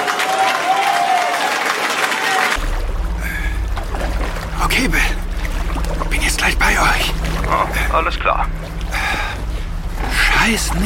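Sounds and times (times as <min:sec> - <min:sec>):
audience applause: 0:00.0 - 0:02.6
low droning hum with a faint tonal whine: 0:02.6 - 0:10.8
speech: 0:07.9 - 0:08.6, 0:10.5 - 0:10.8.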